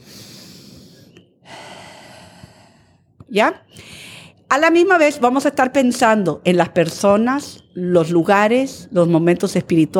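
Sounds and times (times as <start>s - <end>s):
deep inhale through the nose: 0.0s - 3.0s
speech: 3.3s - 9.9s.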